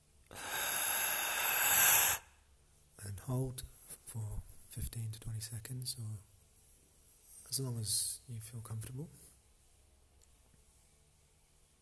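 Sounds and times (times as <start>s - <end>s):
deep inhale for a breathing exercise: 0.3s - 2.3s
speech: 3.3s - 6.3s, 7.5s - 9.3s.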